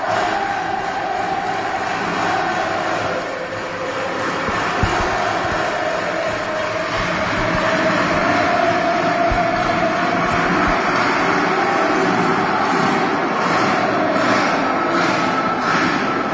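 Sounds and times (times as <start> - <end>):
large football crowd cheering in the stands: 0.0 - 16.3.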